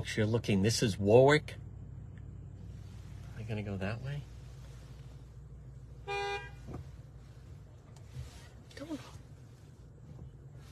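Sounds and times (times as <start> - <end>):
speech: 0.0 - 1.6, 3.5 - 4.3
steady low engine rumble: 0.0 - 10.7
traffic noise: 0.0 - 10.7
car horn honk: 6.0 - 6.8.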